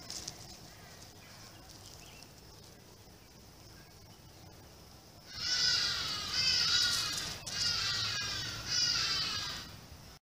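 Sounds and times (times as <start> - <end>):
Vervet monkey screaming: 5.3 - 9.7.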